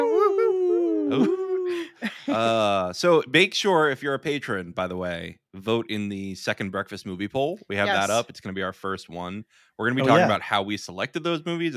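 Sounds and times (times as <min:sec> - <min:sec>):
person imitating a wolf howl: 0:00.0 - 0:01.8
laughter: 0:00.0 - 0:02.9, 0:10.0 - 0:10.4
speech: 0:01.1 - 0:01.4, 0:02.3 - 0:11.7.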